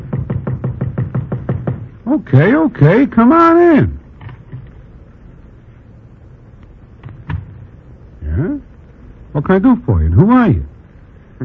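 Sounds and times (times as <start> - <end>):
knocking on a hotel room door: 0.0 - 2.0
speech: 2.1 - 4.0, 9.4 - 10.7.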